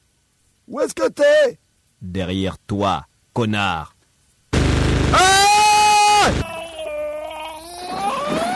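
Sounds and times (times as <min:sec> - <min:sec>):
speech: 0:00.7 - 0:03.9
man screaming: 0:05.1 - 0:08.4.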